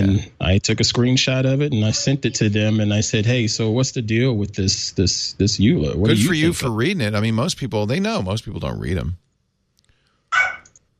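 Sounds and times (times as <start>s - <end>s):
speech: 0.0s - 9.2s
small dog barking at a doorbell: 10.3s - 10.7s.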